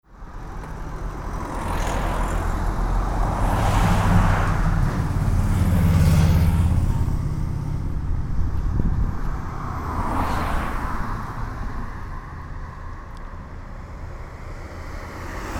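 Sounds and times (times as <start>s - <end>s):
cars passing on a street: 0.1s - 15.5s.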